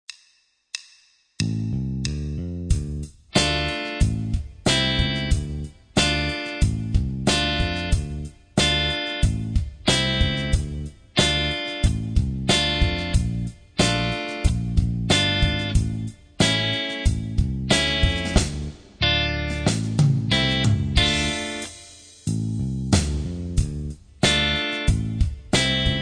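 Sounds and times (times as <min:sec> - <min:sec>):
rock and blues bass solo playback: 0:01.4 - 0:25.9.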